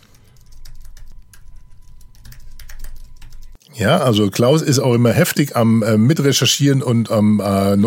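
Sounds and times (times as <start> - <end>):
typing on a computer keyboard: 0.0 - 3.6
low hum: 0.0 - 7.8
speech: 3.7 - 7.8.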